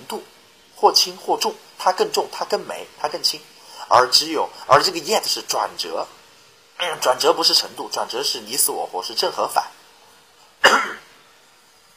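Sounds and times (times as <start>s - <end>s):
speech: 0.1s - 6.2s, 6.8s - 9.7s
person coughing after choking: 10.6s - 11.1s.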